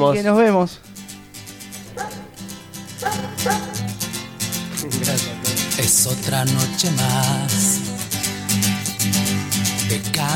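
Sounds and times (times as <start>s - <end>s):
speech: 0.0s - 1.0s, 3.1s - 3.8s, 4.8s - 7.7s, 9.9s - 10.3s
musical backing of bass and guitar: 0.0s - 10.3s
sampled dog bark in a song: 1.9s - 4.0s.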